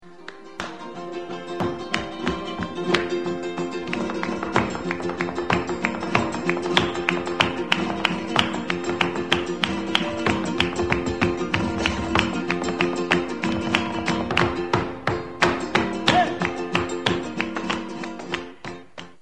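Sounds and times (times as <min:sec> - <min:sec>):
Spanish flamenco music: 0:00.0 - 0:19.2.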